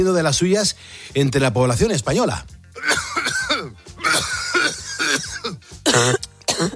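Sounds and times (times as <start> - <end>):
speech: 0.0 - 2.9, 6.0 - 6.2
chesty coughing from flu: 2.8 - 6.7
throat clearing: 2.8 - 6.7.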